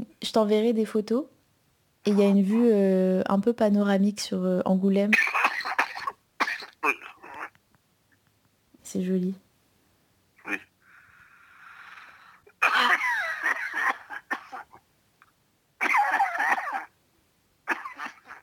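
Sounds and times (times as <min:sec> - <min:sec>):
speech: 0:00.2 - 0:01.4, 0:02.0 - 0:05.4, 0:08.9 - 0:09.4, 0:10.5 - 0:10.7
person coughing heavily in harsh fits: 0:05.1 - 0:07.5, 0:12.6 - 0:14.8, 0:15.8 - 0:16.9, 0:17.7 - 0:18.4
wheezy drawn-in breath: 0:10.8 - 0:12.6.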